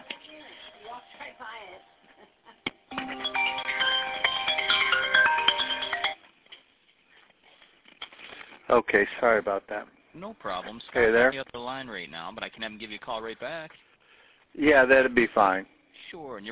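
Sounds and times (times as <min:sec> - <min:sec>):
phone ringtone playing a bright melodic electronic tune: 0:02.8 - 0:06.3
speech: 0:08.7 - 0:13.9, 0:14.5 - 0:16.4.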